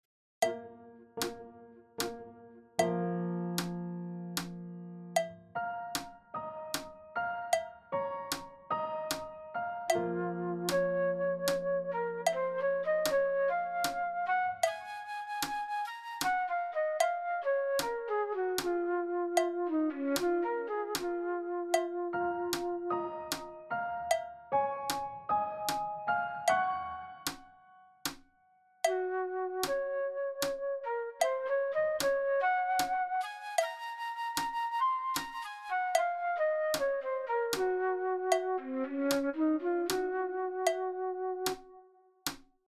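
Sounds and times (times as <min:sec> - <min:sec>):
piano: 0:00.4 - 0:42.4
flute playing fast: 0:09.9 - 0:22.1, 0:28.9 - 0:41.4.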